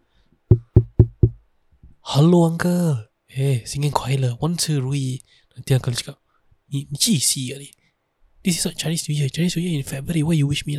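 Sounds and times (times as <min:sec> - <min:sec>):
knocking on a house door: 0:00.5 - 0:01.4
speech: 0:02.1 - 0:07.8, 0:08.4 - 0:10.7.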